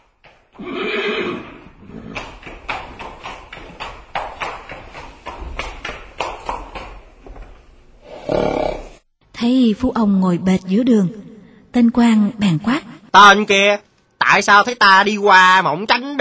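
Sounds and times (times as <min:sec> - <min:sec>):
hoofbeats: 0:00.2 - 0:06.9
horse whinnying: 0:00.6 - 0:02.3, 0:08.0 - 0:09.0
speech: 0:09.4 - 0:11.2, 0:11.8 - 0:16.1.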